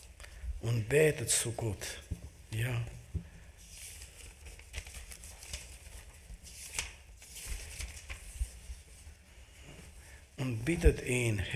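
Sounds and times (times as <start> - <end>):
speech: 0.6 - 3.0, 10.5 - 11.5
thin book pages turning: 3.6 - 8.9.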